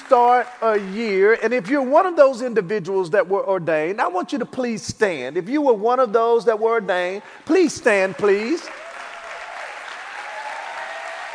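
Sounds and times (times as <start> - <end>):
audience hand clapping at a church service: 0.0 - 1.3, 8.0 - 11.3
speech: 0.1 - 8.8.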